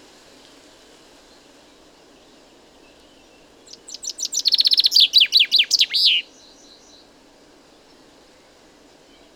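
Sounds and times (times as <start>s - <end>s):
common chaffinch Fringilla coelebs singing: 3.8s - 6.2s.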